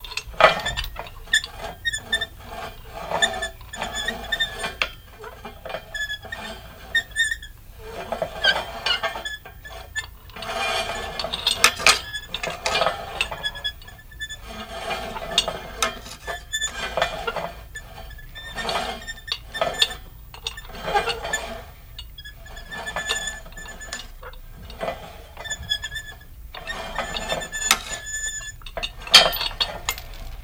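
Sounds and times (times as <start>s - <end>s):
metal scrape creak: 0.0s - 30.4s.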